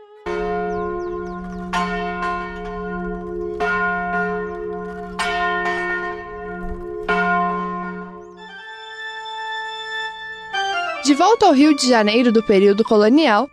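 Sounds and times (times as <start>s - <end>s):
deep church bell ringing with long humming resonance: 0.3s - 8.5s
speech: 11.1s - 13.5s.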